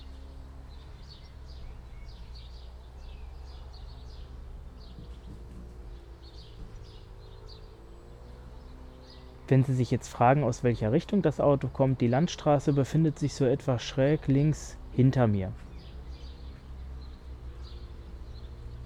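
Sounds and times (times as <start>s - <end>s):
birds chirping faintly outdoors: 0.0s - 18.8s
speech: 9.5s - 15.7s.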